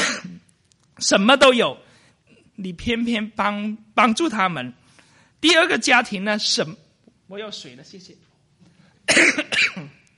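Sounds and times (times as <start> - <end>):
harsh breathy coughs with a rasping trail: 0.0 - 0.4, 9.1 - 10.0
speech: 1.0 - 1.9, 2.6 - 4.8, 5.4 - 8.3, 9.1 - 9.9.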